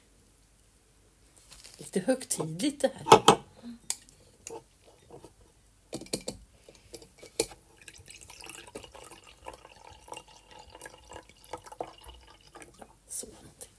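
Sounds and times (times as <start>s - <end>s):
speech: 1.9s - 3.8s
wine pouring into a glass: 7.5s - 13.0s.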